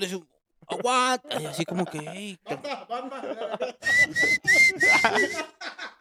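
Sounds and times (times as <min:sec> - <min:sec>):
speech: 0:00.0 - 0:05.9
laughter: 0:00.7 - 0:05.9
person whistling with rising swooping pitch: 0:03.8 - 0:05.4.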